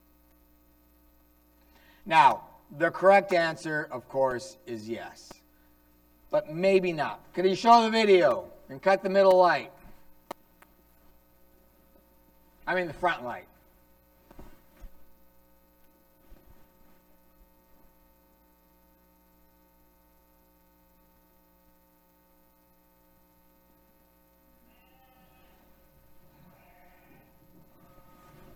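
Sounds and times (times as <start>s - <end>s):
steady electrical hum: 0.0s - 28.5s
speech: 2.0s - 5.4s, 6.3s - 9.8s, 12.7s - 13.5s
lamb bleating after falling in pit: 24.6s - 28.5s.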